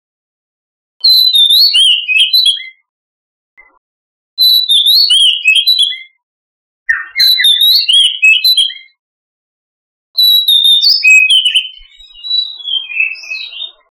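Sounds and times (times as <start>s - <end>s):
oriental magpie-robin singing loud fluid whistled phrases: 1.0s - 2.9s, 4.4s - 6.2s, 6.9s - 9.0s, 10.2s - 13.8s.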